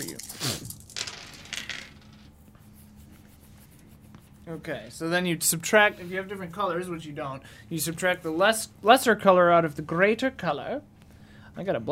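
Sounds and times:
dice clattering across a table: 0.0s - 2.3s
speech: 4.5s - 10.9s, 11.6s - 11.8s.

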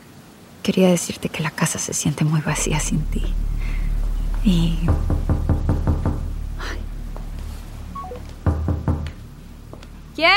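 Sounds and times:
speech: 0.7s - 3.7s, 4.4s - 5.2s, 10.2s - 10.3s
knocking on a door: 4.8s - 6.4s, 8.4s - 9.2s
faint beeps: 7.9s - 8.4s.

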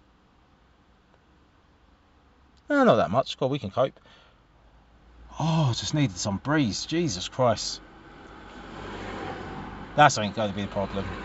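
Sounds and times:
low rumble of traffic from outside: 0.0s - 11.2s
speech: 2.7s - 4.2s, 5.4s - 7.9s, 10.0s - 11.2s
car passing at a distance: 6.5s - 11.2s.

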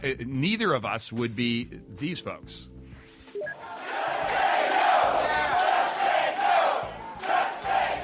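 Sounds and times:
speech: 0.0s - 2.7s
healthcare protesters chanting outside a town hall in Tampa, Florida: 3.6s - 8.0s.

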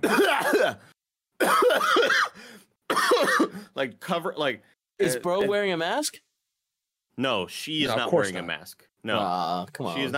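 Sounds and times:
voice mimicking harsh throaty coughs of a plane passenger: 0.0s - 0.8s, 1.4s - 3.7s
speech: 3.8s - 6.3s, 7.2s - 10.1s.

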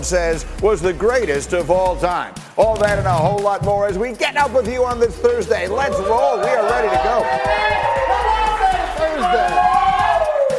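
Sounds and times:
speech: 0.0s - 8.3s
dense crowd cheering and chattering: 5.8s - 10.5s.

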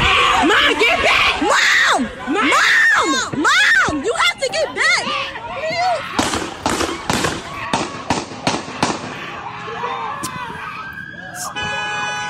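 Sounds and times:
agitated voices shouting: 0.0s - 11.8s
gunshots fired by police: 6.2s - 9.3s.

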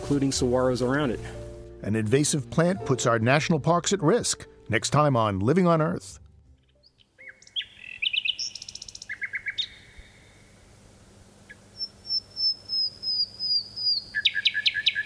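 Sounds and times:
insects humming: 0.0s - 1.6s, 7.1s - 15.0s
nightingale singing: 0.0s - 1.6s, 6.8s - 15.0s
speech: 0.1s - 6.2s.

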